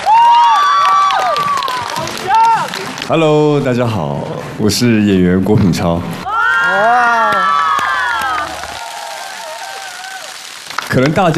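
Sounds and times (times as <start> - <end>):
cheers: 0.0 - 3.2, 6.2 - 11.3
crowd applauding a speaker: 0.0 - 3.7, 6.3 - 11.3
speech: 3.1 - 7.1, 11.0 - 11.3.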